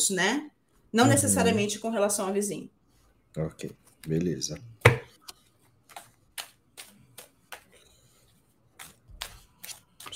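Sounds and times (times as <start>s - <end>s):
speech: 0.0s - 2.8s, 3.4s - 4.7s
tarot cards being shuffled: 4.9s - 10.1s.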